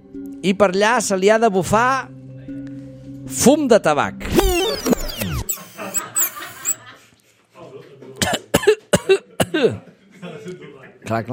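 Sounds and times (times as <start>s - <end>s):
speech: 0.4s - 2.2s, 3.3s - 4.5s, 9.6s - 9.9s, 11.1s - 11.3s
laughter: 5.4s - 7.2s, 9.2s - 11.0s
short sharp coughs: 8.2s - 9.8s.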